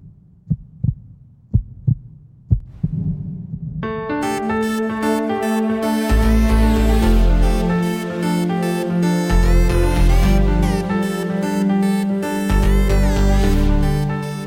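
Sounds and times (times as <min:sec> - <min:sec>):
low lub-dub heartbeat thumps: 0:00.0 - 0:03.9
sustained tonal music: 0:03.9 - 0:14.4.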